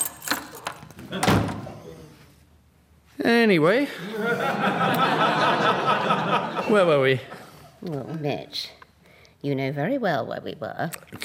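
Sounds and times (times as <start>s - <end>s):
keys jangling as they are handed over: 0.0s - 1.0s
speech: 1.1s - 2.2s, 3.2s - 8.8s, 9.4s - 11.2s
laughter: 4.0s - 7.6s.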